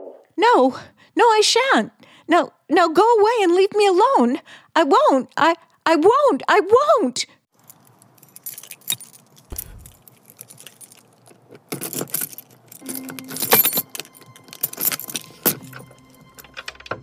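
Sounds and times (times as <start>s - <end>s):
speech: 0.4s - 7.4s
pass keys jangling and scraping in a door lock: 7.6s - 16.9s.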